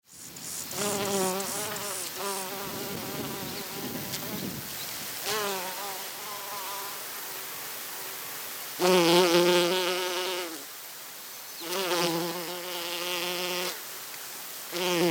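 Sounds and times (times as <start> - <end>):
honeybee buzzing: 0.1 - 4.6, 5.2 - 8.2, 8.8 - 10.7, 11.6 - 13.8, 14.7 - 15.0.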